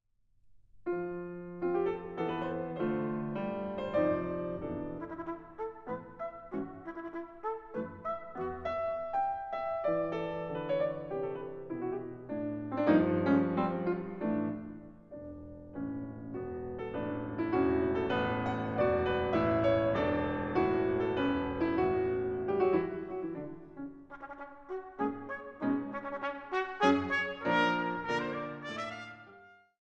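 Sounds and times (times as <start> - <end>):
sonata: 0.1 - 29.8.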